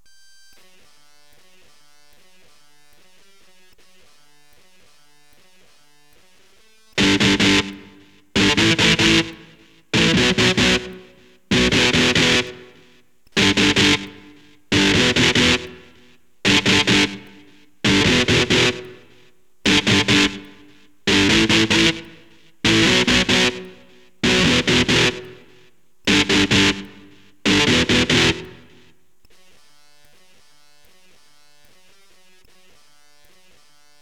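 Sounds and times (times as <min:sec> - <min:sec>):
electric guitar power chord: 0:07.0 - 0:28.9.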